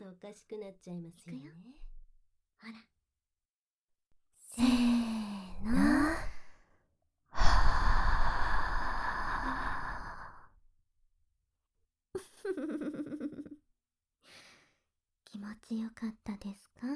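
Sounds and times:
speech: 0.3 - 1.9, 2.6 - 3.0, 4.5 - 6.2, 15.4 - 16.9
soft sighing breath: 4.6 - 6.7, 7.4 - 10.5
breathy exhale blown against the microphone: 7.4 - 10.5.

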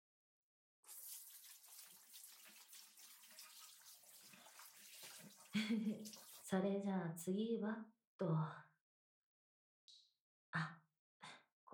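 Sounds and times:
running water splashing as a face is rinsed: 0.9 - 6.5
speech: 5.6 - 8.7, 10.5 - 10.8.

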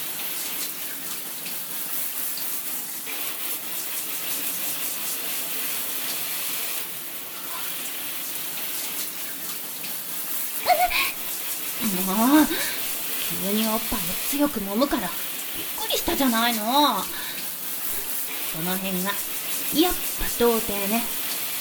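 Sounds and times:
shower water spraying: 0.0 - 21.5
shower stream splashing: 10.6 - 21.5
speech: 11.9 - 12.8, 13.4 - 17.2, 18.5 - 21.2.

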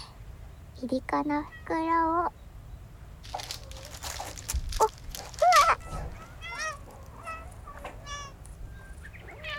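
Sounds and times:
speech: 0.8 - 2.4
cats on a cat island meowing as dried sardines are handed out: 3.3 - 9.5.

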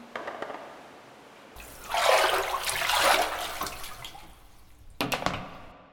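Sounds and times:
hot water poured over a body while bathing: 1.6 - 5.0
running water: 1.6 - 5.7.

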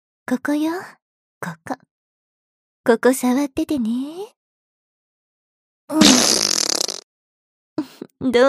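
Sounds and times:
speech: 0.3 - 1.9, 2.8 - 4.4, 5.9 - 6.5, 7.8 - 8.4
drawn-out raspy fart with sputtering tail: 6.0 - 7.1.

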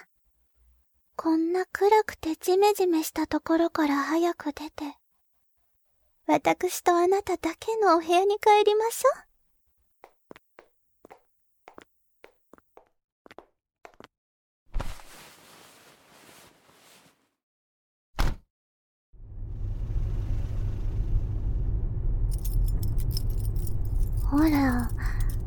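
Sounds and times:
speech: 1.3 - 5.0, 6.3 - 9.3, 24.3 - 25.1
car engine rumble from inside a car driving along: 19.2 - 25.4
keys jangling: 22.3 - 25.4.

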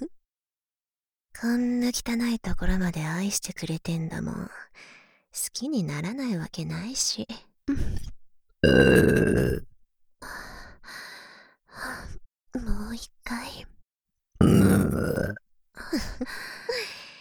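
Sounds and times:
girl talking: 1.4 - 4.7, 5.4 - 7.4, 12.6 - 13.7
speech: 1.4 - 9.7, 14.4 - 16.5
girl's breathy vocal sounds: 7.8 - 9.7, 14.4 - 17.1
girl burping loudly: 8.6 - 9.6, 14.4 - 15.4.

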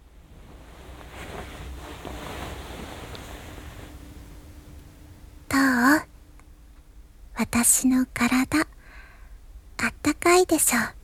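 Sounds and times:
futon blanket being pulled over with a soft fabric rustle: 0.0 - 4.3
speech: 7.4 - 8.7, 10.3 - 11.0.

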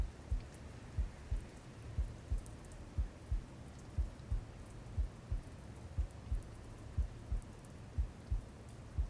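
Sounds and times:
heartbeat: 0.0 - 9.0
soft constant hiss: 0.0 - 9.0.

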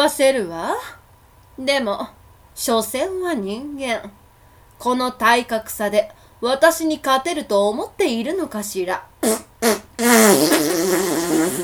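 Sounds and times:
speech: 0.0 - 1.0, 1.6 - 4.2, 4.8 - 11.6
cartoon fart sound effect: 9.2 - 11.6.

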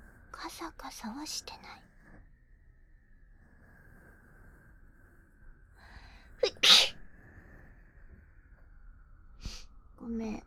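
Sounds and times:
faint steady tone: 0.0 - 10.4
speech: 0.6 - 1.9
sharp sneeze: 6.4 - 7.0.

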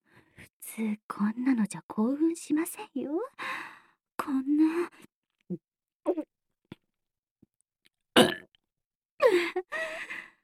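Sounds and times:
speech: 0.8 - 3.6, 4.2 - 6.3
gurgling burps: 8.2 - 8.5.

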